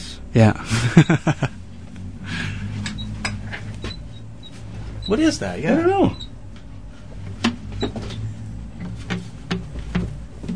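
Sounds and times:
low steady room hum: 0.0 - 10.5
speech: 0.4 - 1.6, 5.1 - 6.2, 7.8 - 8.2
laughter: 0.6 - 1.6
chair squeaking and creaking: 2.6 - 10.5.

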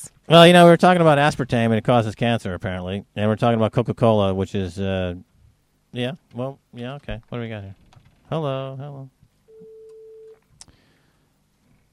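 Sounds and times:
speech: 0.3 - 5.3, 5.9 - 9.2
telephone ringback tone over a phone line: 9.5 - 10.4.

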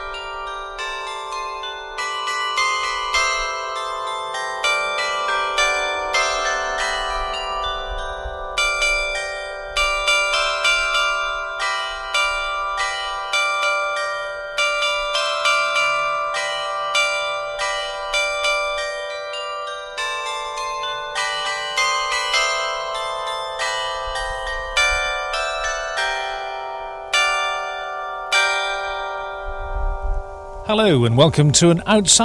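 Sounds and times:
church bells pealing in a belfry: 0.0 - 32.2
speech: 30.8 - 32.2.

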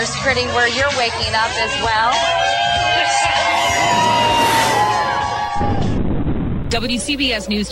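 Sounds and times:
speech: 0.0 - 4.2, 6.7 - 7.6
outdoor crowd cheering and whooping: 1.3 - 6.1
shrill yells: 1.7 - 5.9.

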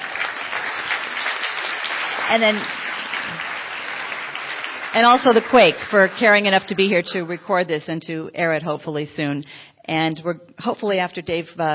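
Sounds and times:
audience applauding: 0.0 - 7.3
speech: 2.3 - 3.4, 4.9 - 11.7.

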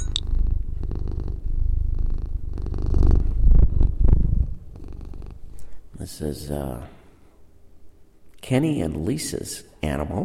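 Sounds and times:
cat purring: 0.1 - 5.8
speech: 6.2 - 7.0, 8.5 - 10.2.

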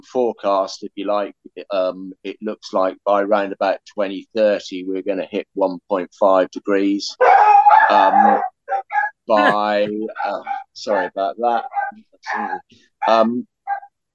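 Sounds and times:
speech: 0.0 - 13.8
dog barking and yelping: 7.2 - 9.6, 10.2 - 13.9.

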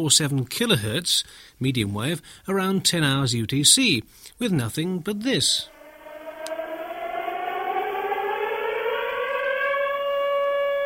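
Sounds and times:
speech: 0.0 - 5.8
faint hum: 5.7 - 10.2
air raid siren wailing through medium wave radio: 5.7 - 10.8.

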